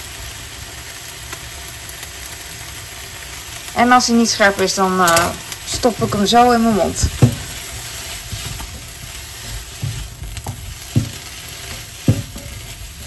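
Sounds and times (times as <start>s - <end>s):
food sizzling while frying in a pan: 0.0s - 13.0s
speech: 3.8s - 7.3s
scraping and stirring clunks in a frying pan: 7.1s - 13.0s.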